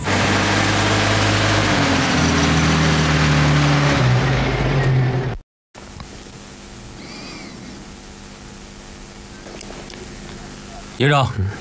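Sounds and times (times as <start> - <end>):
car engine droning as the car drives off: 0.0 - 5.4
speech: 11.0 - 11.5.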